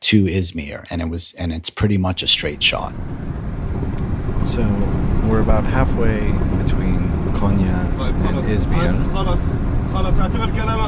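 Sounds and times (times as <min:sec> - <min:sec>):
speech: 0:00.1 - 0:03.6, 0:04.4 - 0:10.8
road drone in a moving car cabin: 0:02.3 - 0:10.8
car engine rumble in a moving car between Konya and Izmir in Turkey: 0:02.4 - 0:10.8.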